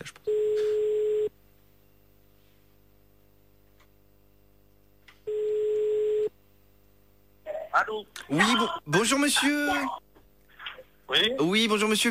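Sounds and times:
telephone ringback tone: 0.3 - 1.3, 5.3 - 6.3
speech: 8.0 - 10.0, 11.1 - 12.1.

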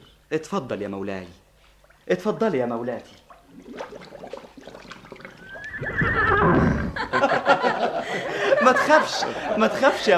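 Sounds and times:
speech: 0.3 - 1.4, 2.1 - 3.8, 8.7 - 10.1
saddled and bridled horse whinnying: 5.0 - 7.1
laughter: 6.4 - 10.1.

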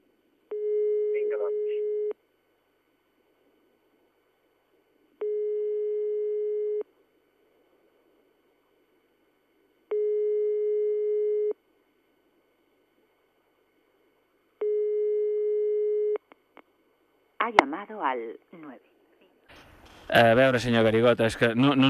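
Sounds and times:
telephone busy tone on a phone line: 0.5 - 2.1, 5.2 - 6.8, 9.9 - 11.5, 14.6 - 16.2
speech: 1.3 - 1.9, 17.5 - 18.9, 20.1 - 21.8.

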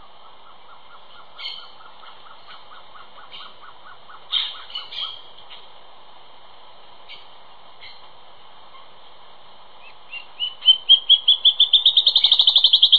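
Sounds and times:
Band-tailed antbird Hypocnemoides maculicauda singing: 0.0 - 5.7, 9.8 - 12.9
Band-tailed antbird high calls: 0.0 - 5.7, 7.0 - 8.1, 9.8 - 12.9.

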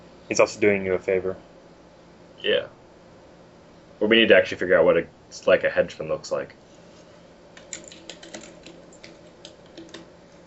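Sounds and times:
low steady hum: 0.0 - 10.4
speech: 0.3 - 1.5, 2.4 - 2.8, 4.0 - 6.6
typing on a computer keyboard: 7.6 - 10.1.

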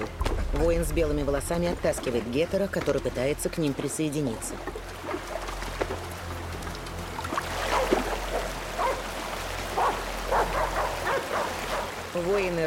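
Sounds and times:
speech: 0.0 - 5.2, 12.2 - 12.6
steady low hum: 0.0 - 8.8
wash of water in a fast river: 0.0 - 12.6
dog barking beside a fast river: 8.8 - 9.0, 9.8 - 12.0.

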